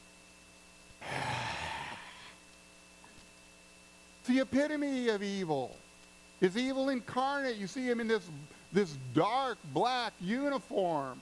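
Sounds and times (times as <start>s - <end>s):
heavy hissing mechanical breath: 1.0s - 2.4s
speech: 4.2s - 5.8s, 6.4s - 11.1s.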